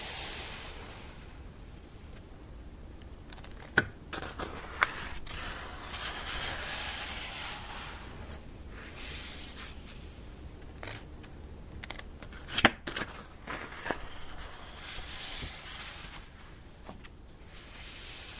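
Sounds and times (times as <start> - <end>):
faint low rumble: 0.0 - 18.3
book pages turning with papery swishes and rustles: 3.4 - 10.0, 10.6 - 17.2.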